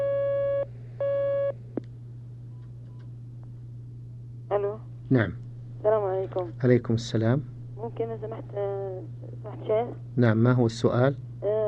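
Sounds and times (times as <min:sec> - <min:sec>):
telephone line tones as a caller is connected to a call-in line: 0:00.0 - 0:01.5
constant low hum: 0:00.0 - 0:11.6
speech: 0:05.1 - 0:11.5.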